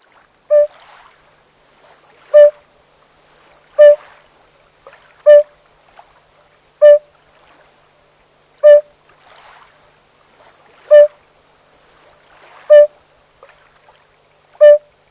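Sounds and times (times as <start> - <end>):
yellow-bellied toad calling: 0.5 - 0.7, 2.3 - 2.6, 3.8 - 4.0, 5.2 - 5.5, 6.8 - 7.0, 8.6 - 8.9, 10.9 - 11.2, 12.7 - 12.9, 14.6 - 14.9.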